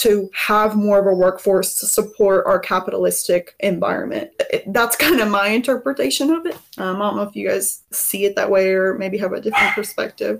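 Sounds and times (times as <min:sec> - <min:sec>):
speech: 0:00.0 - 0:10.3
dog barking: 0:09.5 - 0:09.9.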